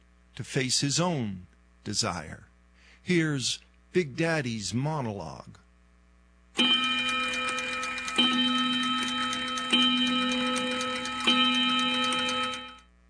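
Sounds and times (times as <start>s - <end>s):
speech: 0.4s - 5.6s
clock striking with metallic tones: 6.6s - 12.8s.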